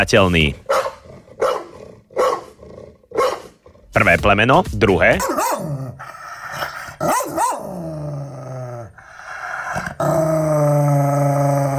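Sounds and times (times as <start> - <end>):
speech: 0.0 - 0.6, 4.0 - 6.2, 7.0 - 8.2
angry dog barking sharply: 0.7 - 3.6, 5.2 - 5.7, 7.0 - 7.7
angry dog growling and snarling: 0.9 - 4.0, 5.2 - 11.7.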